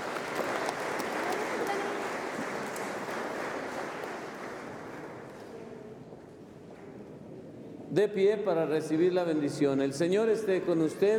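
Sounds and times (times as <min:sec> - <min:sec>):
church audience applauding married couples: 0:00.0 - 0:05.4
speech: 0:07.9 - 0:11.1.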